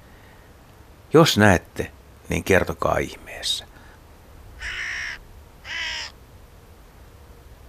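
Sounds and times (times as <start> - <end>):
speech: 1.1 - 3.7
hooded crow giving harsh raspy caws: 4.6 - 6.2.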